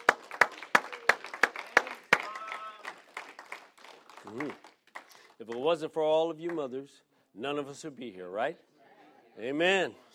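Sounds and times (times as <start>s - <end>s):
audience clapping for mothers on Mother's Day: 0.0s - 6.8s
speech: 4.2s - 4.7s, 5.4s - 8.7s, 9.4s - 10.1s.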